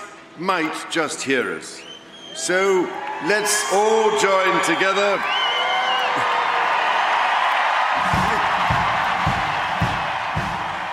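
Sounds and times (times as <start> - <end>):
speech: 0.4 - 5.4
large crowd cheering at an evening event: 2.2 - 10.9
rhythmic low thumps: 8.0 - 10.9.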